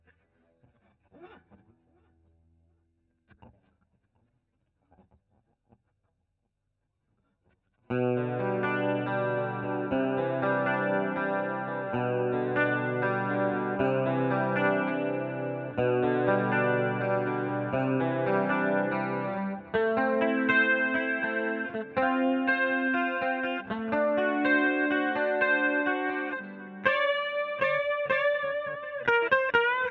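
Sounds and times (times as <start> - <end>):
guitar solo: 7.9 - 29.9.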